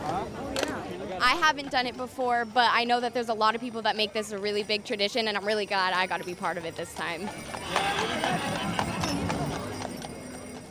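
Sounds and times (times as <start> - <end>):
speech: 1.2 - 8.8
horse hooves clip-clopping pulling a carriage: 3.5 - 10.6.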